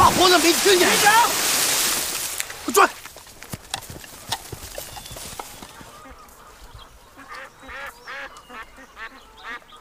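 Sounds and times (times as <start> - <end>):
speech: 0.2 - 1.5, 2.7 - 3.0
ducks quacking: 5.6 - 9.7.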